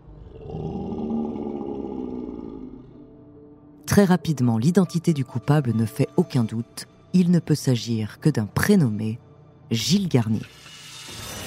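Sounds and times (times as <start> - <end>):
deep sustained werewolf roar sound effect: 0.2 - 3.1
speech: 3.9 - 10.6.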